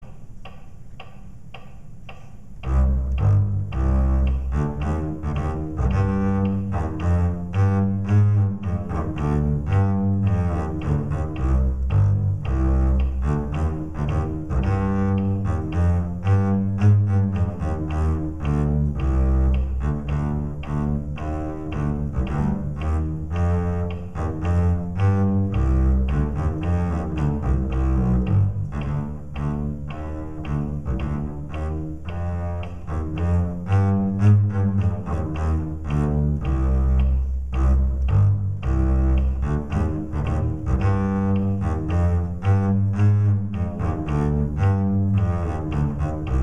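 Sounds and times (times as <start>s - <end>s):
fast farandole bass line: 2.7s - 46.4s.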